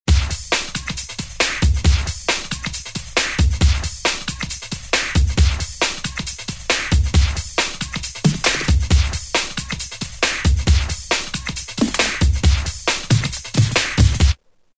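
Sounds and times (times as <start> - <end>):
new jack drum beat on drum machine: 0.1 - 14.4.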